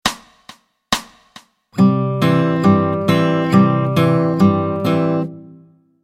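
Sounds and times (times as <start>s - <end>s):
fingerpicked guitar in Travis picking style: 1.8s - 6.0s.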